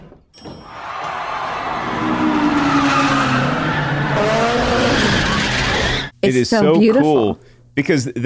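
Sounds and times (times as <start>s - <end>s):
race car tires squealing in drifting skids: 0.8s - 6.1s
race car engine roaring while drifting in a street race in Tokyo: 1.5s - 6.1s
speech: 6.2s - 8.2s.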